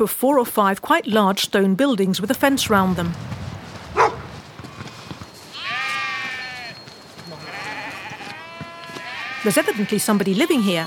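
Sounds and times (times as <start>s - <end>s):
speech: 0.0s - 3.3s, 9.4s - 10.8s
sheep bleating with wavering quavering call: 5.5s - 10.8s.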